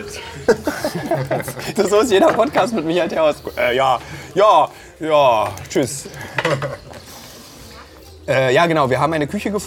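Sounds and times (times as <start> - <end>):
speech: 0.0 - 6.8, 8.3 - 9.6
laughter: 0.1 - 3.2, 6.1 - 7.0
metal cutlery scraping and clinking against a plate while serving rice: 6.2 - 8.0.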